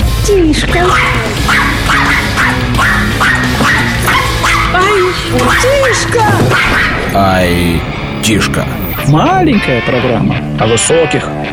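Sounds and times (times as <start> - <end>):
speech: 0.3 - 1.5, 5.3 - 11.5
small dog barking in sharp high-pitched yaps: 0.8 - 7.2.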